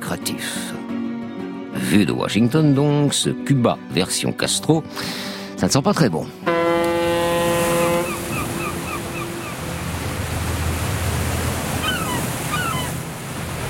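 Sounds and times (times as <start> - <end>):
speech: 0.1 - 0.7, 1.9 - 6.6
cruise ship's foghorn sounding in Havana harbour from a 150-metre liner: 6.4 - 13.0
waves and water noise in Havana harbour: 6.4 - 13.6.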